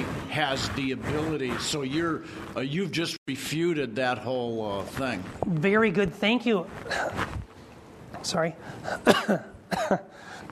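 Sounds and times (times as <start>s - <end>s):
speech: 0.4s - 7.2s, 8.2s - 10.4s
man coughing: 6.8s - 7.3s, 8.8s - 10.3s.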